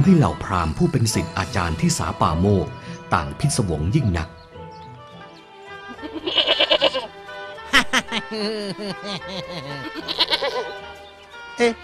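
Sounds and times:
speech: 0.0 - 4.4, 8.3 - 11.0, 11.6 - 11.8
goat bleating loudly: 5.9 - 7.2, 9.6 - 10.8
laughter: 7.7 - 10.8.

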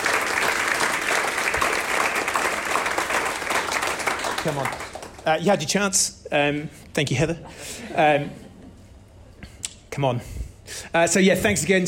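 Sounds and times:
audience applause for panelists: 0.0 - 5.3
speech: 4.4 - 8.4, 10.0 - 11.8
laughter: 7.3 - 9.1.

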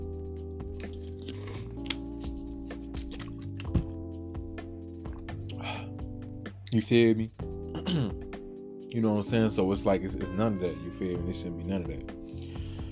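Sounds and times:
person sipping and swallowing water: 0.6 - 4.0
speech: 6.7 - 8.2, 8.9 - 12.2.

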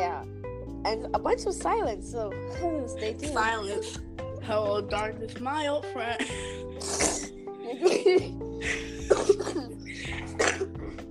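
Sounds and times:
speech: 0.2 - 9.4
sick person coughing harshly: 6.4 - 11.0
laughter: 7.6 - 10.7.

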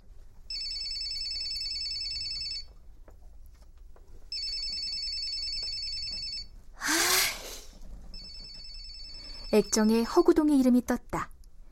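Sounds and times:
mobile phone ringtone imitating an old black telephone bell: 0.5 - 2.7, 4.3 - 6.5, 8.2 - 10.2
speech: 9.6 - 11.3.

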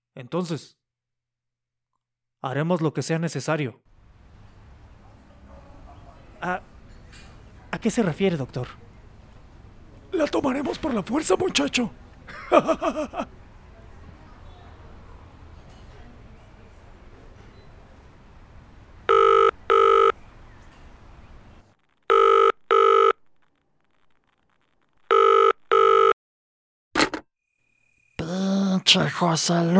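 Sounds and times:
speech: 0.2 - 0.8, 2.4 - 3.9, 6.4 - 6.7, 7.8 - 8.8, 10.1 - 13.4, 28.9 - 29.7
laughter: 12.2 - 13.4
telephone ringing unanswered: 19.1 - 20.2, 22.1 - 23.2, 25.1 - 26.2.

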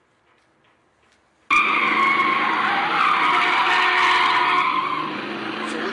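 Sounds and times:
limousine engine revving: 1.5 - 5.9
limousine tires screeching while skidding around a corner: 1.5 - 5.9.

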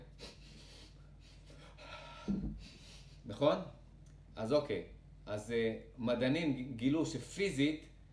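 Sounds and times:
person taking sharp sob-like double inhales: 0.2 - 2.8
speech: 2.3 - 3.8, 4.4 - 7.9.

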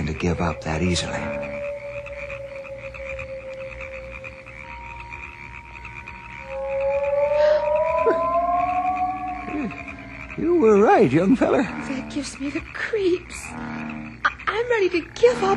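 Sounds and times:
frogs croaking at night on an island: 0.0 - 15.5
speech: 0.2 - 1.4, 10.4 - 13.8, 14.6 - 15.5.

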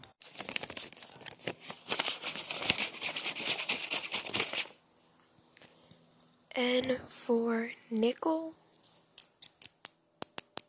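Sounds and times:
paper money bills crinkling and rustling as they are handled: 0.2 - 4.8
speech: 6.6 - 8.6.

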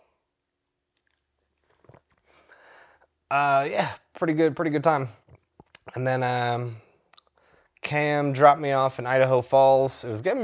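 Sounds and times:
person sipping beer: 1.0 - 2.6
slurp and swallow: 1.6 - 2.2
speech: 3.3 - 5.2, 6.0 - 6.8, 7.9 - 10.4
mouth clicks: 5.2 - 6.0.

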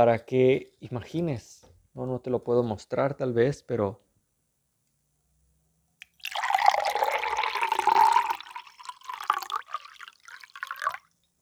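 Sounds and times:
speech: 0.0 - 4.0
water pouring into a drinking glass: 6.0 - 11.1.

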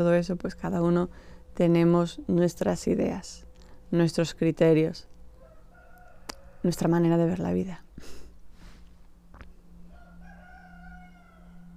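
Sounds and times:
speech: 0.0 - 5.1, 6.6 - 8.2
quiet hum: 0.0 - 11.7
rooster crowing: 5.4 - 6.9, 9.8 - 11.7.

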